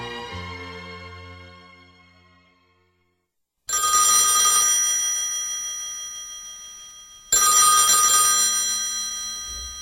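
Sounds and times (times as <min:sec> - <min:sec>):
telephone bell ringing: 0:03.7 - 0:09.7.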